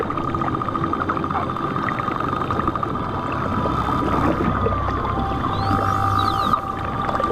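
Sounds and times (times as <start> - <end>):
dense crackling underwater noise: 0.0 - 7.3
steady droning hum underwater: 0.0 - 7.3
pilot whale whistles and chirps underwater: 5.0 - 7.3.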